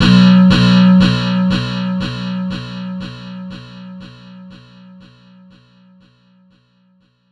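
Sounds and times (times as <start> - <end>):
guitar with echo: 0.0 - 5.6.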